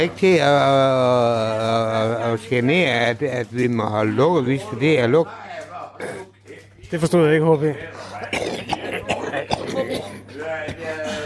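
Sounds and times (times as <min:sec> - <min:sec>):
speech: 0:00.0 - 0:06.3, 0:06.9 - 0:08.6
person coughing: 0:08.2 - 0:11.0.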